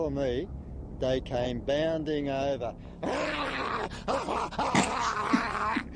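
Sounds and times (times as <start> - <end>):
speech: 0.0 - 3.4, 4.0 - 5.9
man growling and snarling in imitation of an angry dog: 3.0 - 5.9.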